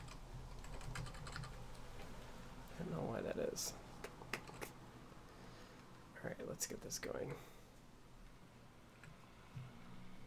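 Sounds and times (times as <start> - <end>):
typing on a computer keyboard: 0.0 - 1.8, 4.3 - 4.7
speech: 2.8 - 3.8, 6.2 - 7.5.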